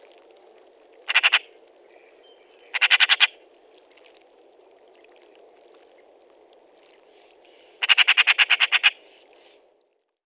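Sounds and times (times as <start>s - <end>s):
faint background noise: 0.0s - 10.2s
Eurasian magpie Pica pica chattering: 7.8s - 9.0s.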